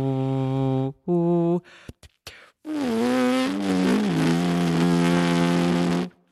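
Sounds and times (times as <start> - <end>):
horn player humming a sustained wavering tone: 0.0 - 6.1.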